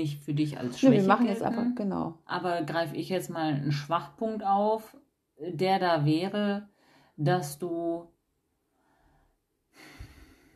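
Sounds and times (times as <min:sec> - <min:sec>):
speech: 0:00.0 - 0:08.1
person breathing in and exhaling heavily: 0:06.7 - 0:07.2, 0:08.7 - 0:10.5.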